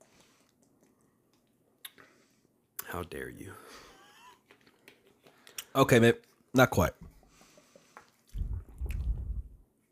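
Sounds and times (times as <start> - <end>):
speech: 2.9 - 3.9, 5.8 - 7.1
person sipping bottled water: 8.0 - 9.6.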